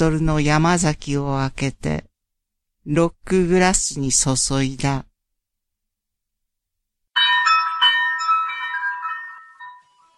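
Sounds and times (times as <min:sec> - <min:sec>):
speech: 0:00.0 - 0:02.1, 0:02.8 - 0:05.1
cowbell hanging on a door ringing as the door opens: 0:07.2 - 0:10.1.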